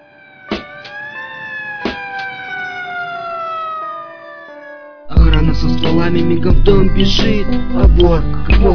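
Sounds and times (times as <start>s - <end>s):
loud alarm siren wailing with falling multi-toned pitch: 0.0s - 6.5s
sharp thumps: 0.5s - 1.1s, 1.7s - 2.6s
speech: 5.4s - 8.7s.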